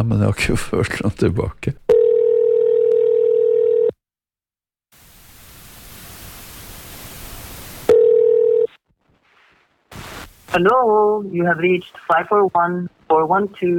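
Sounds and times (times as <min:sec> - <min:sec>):
speech: 0:00.0 - 0:01.8, 0:10.5 - 0:13.7
steady electronic telephone tone: 0:01.9 - 0:04.0, 0:07.9 - 0:08.8
loud hissing static on a telephone line: 0:04.9 - 0:08.0, 0:09.0 - 0:13.7.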